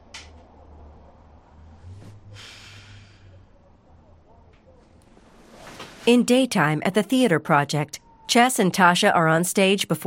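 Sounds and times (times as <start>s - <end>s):
deep nasal inhalation from a jar of vapor rub at night: 1.7s - 3.4s
speech: 6.1s - 10.0s.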